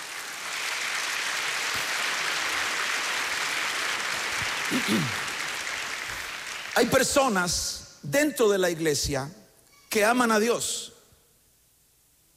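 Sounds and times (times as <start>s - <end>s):
crowd applauding: 0.0s - 7.6s
speech: 4.7s - 5.2s, 6.8s - 10.9s.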